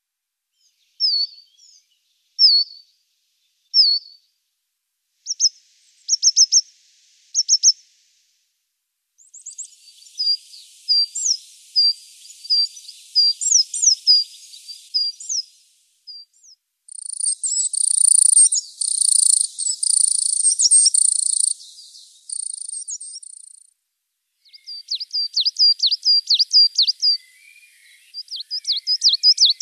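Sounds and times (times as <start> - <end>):
marsh tit: 5.3 - 6.6, 9.2 - 23.7, 24.4 - 29.6.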